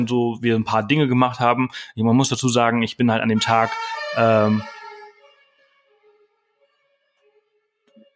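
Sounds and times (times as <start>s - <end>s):
speech: 0.0s - 4.8s
emergency vehicle siren wailing outside on the street: 3.3s - 6.2s.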